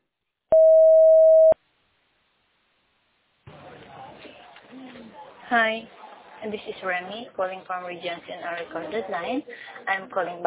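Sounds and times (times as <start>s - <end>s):
voicemail recording tone beep: 0.5s - 1.6s
speech: 5.5s - 10.4s.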